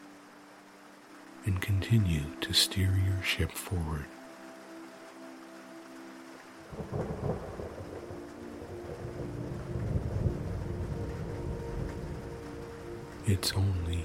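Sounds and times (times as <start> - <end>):
rain at sea: 0.0 - 14.0
speech: 1.4 - 4.2, 13.3 - 14.0
deep rumbling thunder: 6.7 - 13.2.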